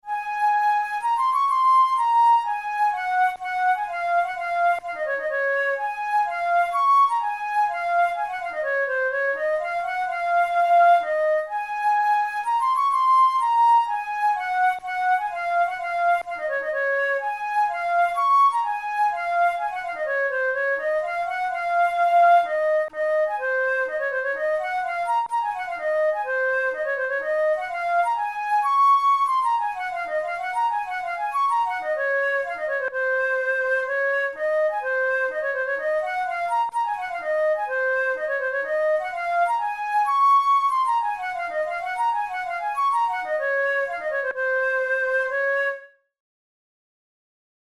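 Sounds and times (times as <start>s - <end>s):
flute studies in C sharp major: 0.0s - 46.2s.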